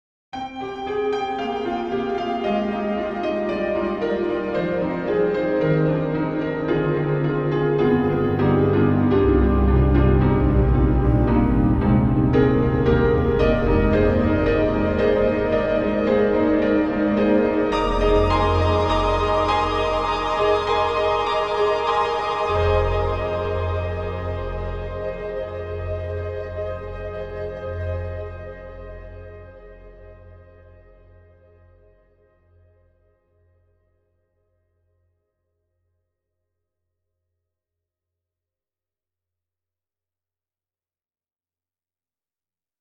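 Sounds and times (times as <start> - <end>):
granular piano from Steinberg HALion 5: 0.4 - 31.4.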